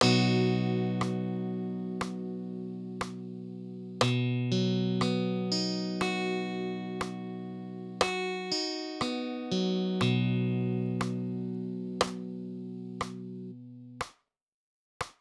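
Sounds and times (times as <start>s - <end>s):
rhythm: 0.0s - 4.3s, 5.0s - 6.4s, 7.0s - 7.4s, 8.0s - 9.4s, 10.0s - 12.4s, 13.0s - 13.4s.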